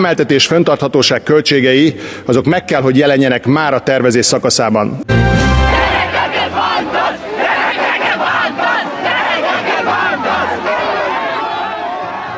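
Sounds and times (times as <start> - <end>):
speech: 0.0 - 5.6
protesters chanting at a street demonstration: 5.4 - 12.3
continuous roar of many people: 5.8 - 12.3.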